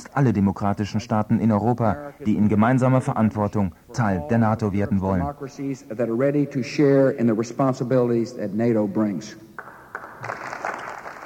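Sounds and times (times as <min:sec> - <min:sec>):
speech: 0:00.1 - 0:09.6
many people applauding in a parliament chamber: 0:09.6 - 0:11.2.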